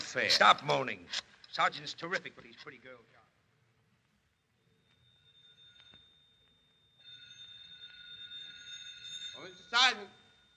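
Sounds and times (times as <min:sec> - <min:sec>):
speech: 0:00.1 - 0:03.2, 0:09.4 - 0:10.2
telephone ringing: 0:04.7 - 0:10.5.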